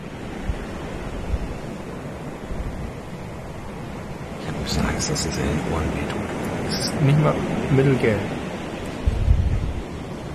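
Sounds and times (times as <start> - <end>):
waves washing over pebbles on a Dominican Republic beach: 0.0 - 10.3
speech: 4.7 - 8.4.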